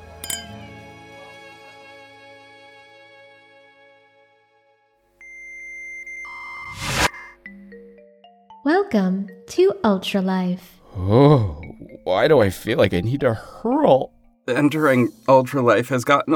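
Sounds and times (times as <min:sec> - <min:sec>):
drinking glasses clinking in a toast: 0:00.2 - 0:00.7
electronic beeping tones: 0:05.2 - 0:07.5
sudden whooshing burst: 0:06.7 - 0:07.2
speech: 0:08.6 - 0:11.5, 0:12.1 - 0:16.3.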